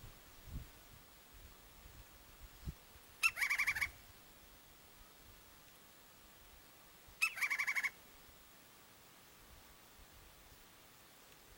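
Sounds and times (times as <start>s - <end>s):
woodpecker call: 3.2s - 4.0s, 7.2s - 8.0s.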